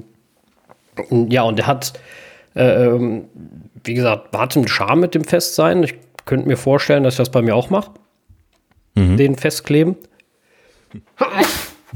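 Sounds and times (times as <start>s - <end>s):
speech: 1.0s - 8.0s, 9.0s - 10.1s, 10.9s - 11.9s
sneeze: 11.2s - 11.9s.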